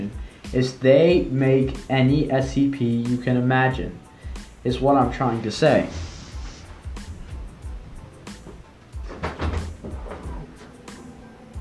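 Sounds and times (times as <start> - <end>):
speech: 0.5 - 4.0, 4.6 - 6.1
door being handled and opened with wooden clunks: 9.0 - 10.4.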